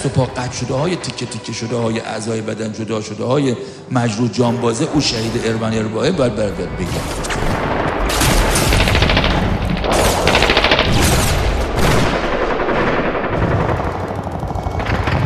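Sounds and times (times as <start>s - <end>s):
speech: 0.0s - 7.7s
simulated heavy booming blasts like artillery shelling: 5.0s - 15.2s
simulated battlefield machine-gun bursts: 6.9s - 15.2s.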